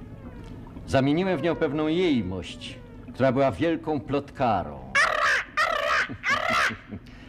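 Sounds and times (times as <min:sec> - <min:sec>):
speech: 0:00.9 - 0:04.8
parrot squawking: 0:04.9 - 0:07.0
laughter: 0:05.7 - 0:07.1.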